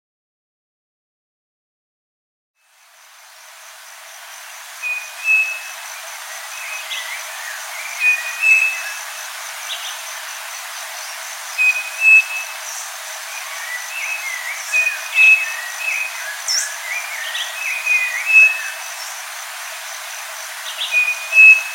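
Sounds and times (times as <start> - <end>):
saci bird call: 4.8 - 5.8, 6.5 - 9.1, 11.6 - 12.8, 13.4 - 19.0, 20.6 - 21.7.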